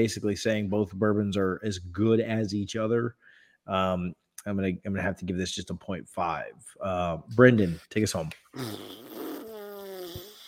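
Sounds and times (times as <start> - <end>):
speech: 0.0 - 9.1
buzzy fart noise blown with the mouth: 8.6 - 10.4.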